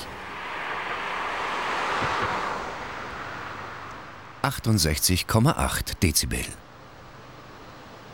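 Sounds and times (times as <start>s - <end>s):
test car on low-noise tires passing at 50 km/h: 0.0s - 4.4s
low-noise tire-and-road hiss: 0.0s - 8.1s
speech: 4.4s - 6.7s.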